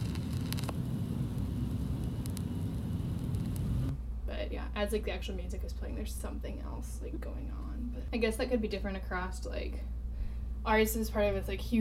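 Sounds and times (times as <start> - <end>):
vinyl record surface hiss as the needle is dropped on the record: 0.0 - 4.0
low record rumble: 0.0 - 11.7
speech: 4.5 - 10.0, 10.6 - 11.8.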